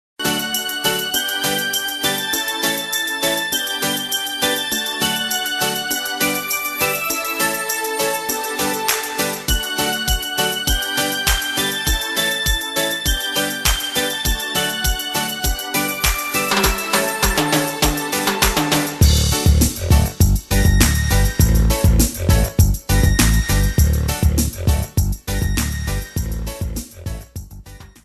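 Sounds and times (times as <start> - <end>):
traditional Guatemalan music: 0.2 - 26.7.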